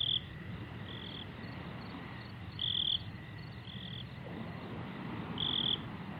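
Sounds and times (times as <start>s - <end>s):
crickets chirping in the evening: 0.0s - 6.1s.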